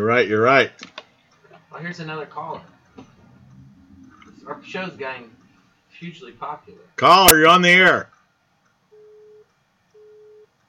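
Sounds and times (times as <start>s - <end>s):
speech: 0.0s - 0.9s, 1.7s - 3.1s, 4.5s - 5.4s, 6.0s - 8.1s
faint hiss: 1.1s - 8.9s
telephone busy signal beeps after caller disconnected: 8.9s - 9.4s, 10.0s - 10.5s.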